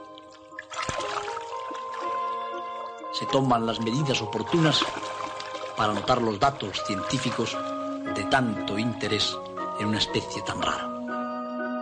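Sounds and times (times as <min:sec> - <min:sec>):
water poured over river dolphins on wet mud splashing: 0:00.0 - 0:08.6
speech: 0:03.2 - 0:05.2, 0:05.8 - 0:10.9.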